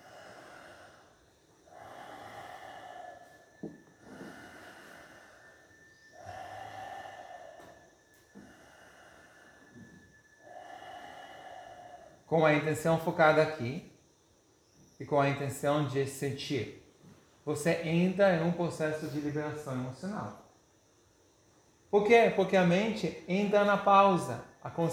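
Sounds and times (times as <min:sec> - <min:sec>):
continuous deep circular breathing: 0:00.0 - 0:15.0, 0:17.1 - 0:21.1
speech: 0:12.3 - 0:13.9, 0:15.1 - 0:16.8, 0:17.5 - 0:20.4, 0:21.9 - 0:24.9.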